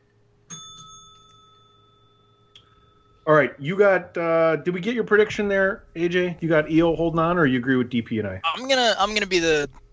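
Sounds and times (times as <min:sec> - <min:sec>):
bright bell struck and ringing: 0:00.5 - 0:03.4
speech: 0:03.3 - 0:09.8.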